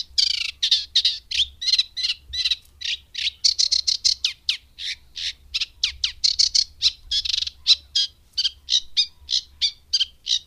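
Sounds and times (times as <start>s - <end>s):
Eurasian reed warbler singing: 0.0s - 10.4s.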